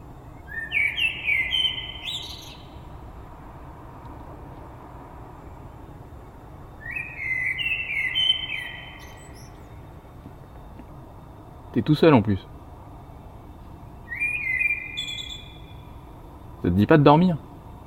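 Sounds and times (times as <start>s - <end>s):
bird singing warbling phrases: 0.0s - 3.0s, 6.7s - 10.1s, 14.0s - 16.2s
hiss of quiet outdoor noise: 0.0s - 17.8s
speech: 11.8s - 12.5s, 16.7s - 17.5s.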